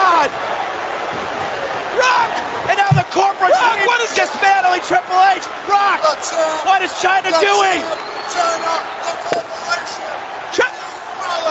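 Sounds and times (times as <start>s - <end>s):
crowd noise: 0.0s - 11.5s
excited wrestling commentary: 1.9s - 11.5s
light thump: 2.9s - 3.1s
wrestling chokeslam landing on the mat: 2.9s - 3.1s
speech: 3.1s - 10.6s.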